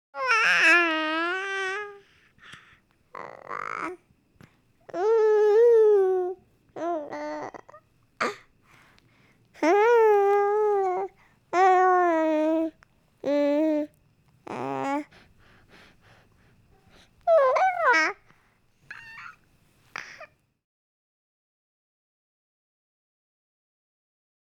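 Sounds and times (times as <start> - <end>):
baby cooing: 0.2 - 2.0, 3.1 - 4.0, 4.9 - 8.5, 9.6 - 15.2, 17.3 - 18.2, 18.9 - 19.4.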